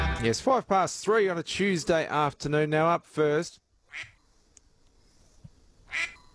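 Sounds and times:
speech: 0.2 - 4.1
faint hiss: 0.2 - 6.3
raspy duck quacks: 3.9 - 4.2, 5.9 - 6.2.

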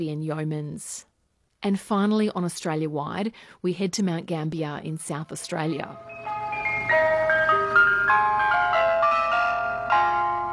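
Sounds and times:
speech: 0.0 - 6.2
ice cream van chime in Mount Gambier, South Australia, playing a folk melody: 5.9 - 10.5.

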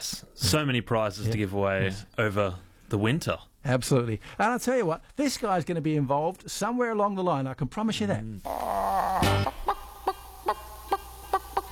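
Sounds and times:
speech: 0.0 - 9.6
rooster squawking and clucking: 8.4 - 11.7.

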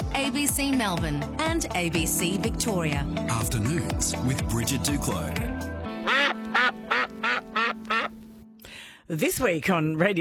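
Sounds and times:
speech: 0.2 - 6.2, 9.1 - 10.1
duck quacking: 6.0 - 8.2.

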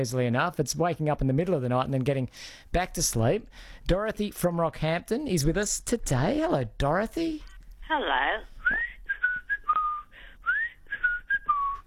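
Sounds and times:
speech: 0.0 - 8.9
person whistling a short lilting tune: 8.6 - 11.8.

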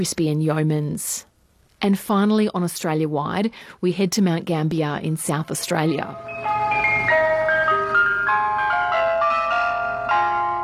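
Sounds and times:
speech: 0.0 - 6.4
ice cream van chimes from a pink and white van in Mount Gambier, South Australia: 6.1 - 10.6.

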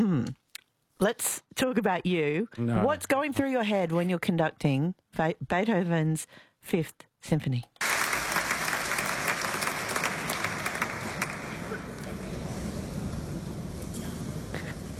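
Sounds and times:
speech: 1.0 - 7.8
large audience applauding in a big concert hall: 7.8 - 14.5.

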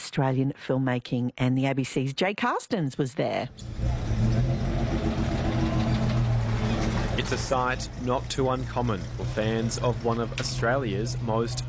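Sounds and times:
speech: 0.2 - 4.0, 7.2 - 11.6
dusty safari truck engine running while driving through an outback town: 3.5 - 11.6.

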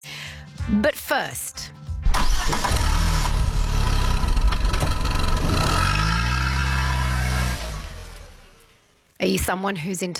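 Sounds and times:
speech: 0.7 - 1.7, 9.2 - 10.1
car engine starting and roaring: 2.1 - 8.8.

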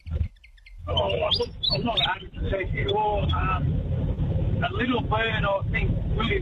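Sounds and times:
willy wagtail singing chattering chirps and whistled notes: 0.0 - 3.4
steady low rumble: 0.0 - 6.4
speech: 1.1 - 6.4.

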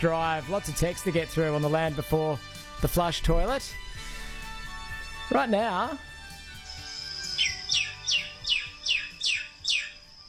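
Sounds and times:
speech: 0.0 - 4.1, 5.3 - 6.1
Indian myna calling in Queensland: 6.5 - 10.2.

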